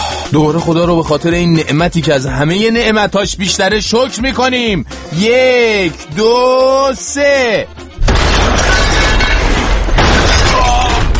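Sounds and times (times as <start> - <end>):
speech: 0.3 - 7.8
loud sustained explosion effect with shattering debris: 8.0 - 11.1.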